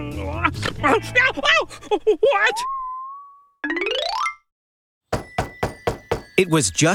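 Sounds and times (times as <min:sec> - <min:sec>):
speech: 0:00.1 - 0:02.8, 0:06.4 - 0:06.9
sharp knocks on a door: 0:05.1 - 0:06.3.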